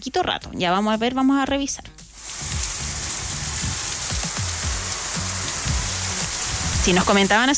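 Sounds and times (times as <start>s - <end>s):
speech: 0.0s - 2.0s, 6.8s - 7.5s
heavy rain drumming on surfaces: 2.2s - 7.5s.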